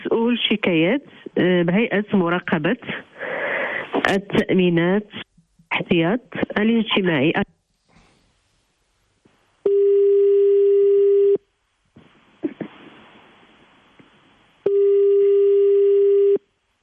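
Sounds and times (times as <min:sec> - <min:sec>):
speech: 0:00.2 - 0:03.1, 0:04.0 - 0:07.5
ringback tone on an outgoing phone call: 0:09.7 - 0:11.4, 0:14.7 - 0:16.4.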